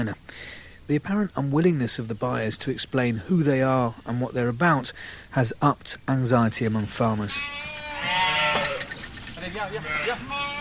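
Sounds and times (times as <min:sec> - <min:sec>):
speech: 0:00.0 - 0:08.3, 0:09.5 - 0:10.6
black-faced Suffolk sheep bleating: 0:07.2 - 0:10.6.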